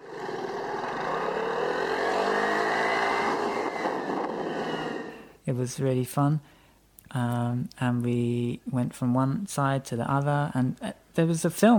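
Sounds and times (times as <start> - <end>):
small rented Vespa scooter engine buzzing on a tiny island off Ibiza: 0.0 - 5.3
speech: 5.5 - 11.7.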